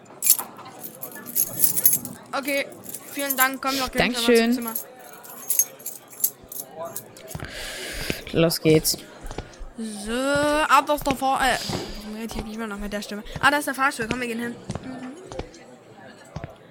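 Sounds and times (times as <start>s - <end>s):
room keys jangling as they are handed over: 0.0s - 7.4s
speech: 2.4s - 4.9s, 8.4s - 9.1s, 9.8s - 14.8s.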